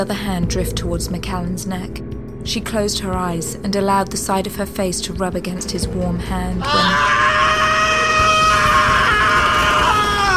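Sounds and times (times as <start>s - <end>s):
speech: 0.0s - 7.2s
man screaming loudly: 6.6s - 10.3s.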